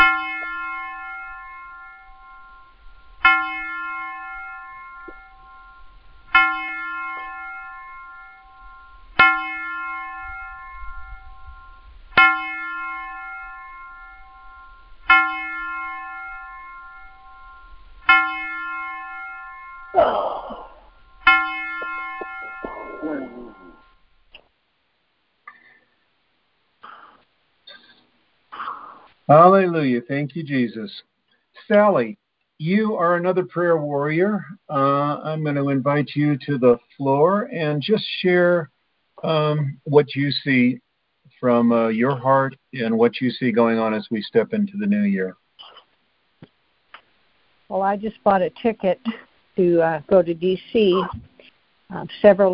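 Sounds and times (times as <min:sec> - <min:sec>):
church bell tolling: 0:00.0 - 0:20.0, 0:20.9 - 0:24.0
speech: 0:29.3 - 0:31.1, 0:31.7 - 0:40.8, 0:41.4 - 0:45.4, 0:47.7 - 0:51.3, 0:51.9 - 0:52.5.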